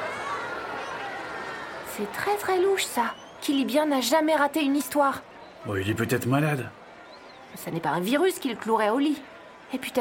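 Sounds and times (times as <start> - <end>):
crowd of children whining and protesting: 0.0 - 3.4
speech: 2.0 - 6.8, 7.5 - 10.0.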